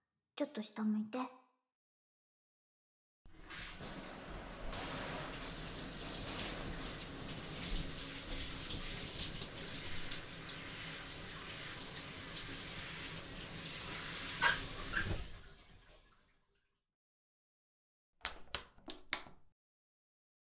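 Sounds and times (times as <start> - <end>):
speech: 0.4 - 1.4
running tap water wetting someone's hair for washing: 3.3 - 16.3.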